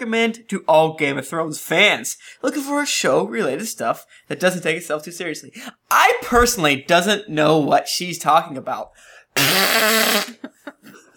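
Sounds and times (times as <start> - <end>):
speech: 0.0 - 11.0
loud buzzy fart noise: 9.4 - 10.4.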